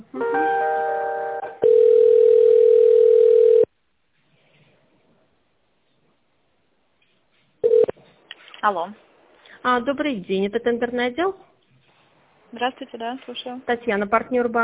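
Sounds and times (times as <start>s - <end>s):
telephone line tone while a call is being transferred: 1.6s - 3.7s, 7.6s - 8.0s
speech: 8.6s - 11.5s, 12.5s - 14.6s.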